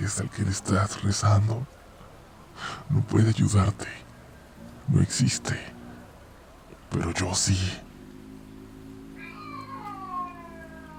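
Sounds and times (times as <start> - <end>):
steady low hum: 0.0 - 10.9
speech: 0.1 - 1.8, 2.6 - 4.0, 4.9 - 5.8, 6.9 - 7.8
cats yowling in wavering drawn-out cries: 9.1 - 10.9.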